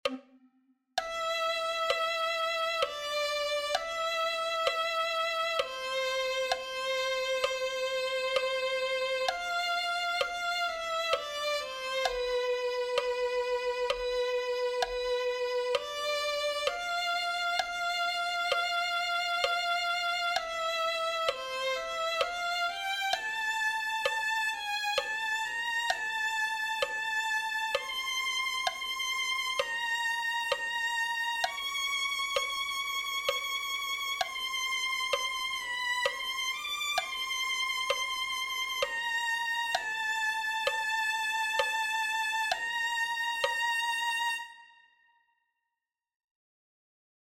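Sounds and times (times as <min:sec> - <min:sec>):
violin: 0:01.0 - 0:45.1.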